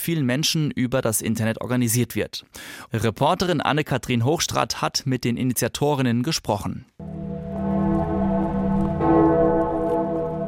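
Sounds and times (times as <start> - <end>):
speech: 0.0 - 7.2
church bells ringing in a peal: 7.0 - 10.4.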